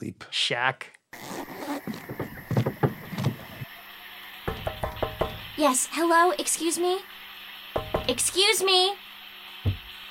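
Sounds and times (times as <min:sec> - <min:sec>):
speech: 0:00.0 - 0:01.0, 0:05.6 - 0:07.2, 0:08.1 - 0:09.8
chair creaking and shifting with low woody knocks: 0:01.2 - 0:03.6.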